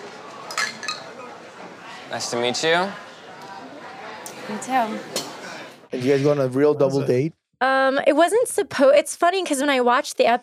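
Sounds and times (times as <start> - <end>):
low murmur of voices: 0.0 - 7.2
glasses clinking together in a toast: 0.5 - 1.3
speech: 2.1 - 3.1, 4.5 - 5.3, 5.9 - 10.4.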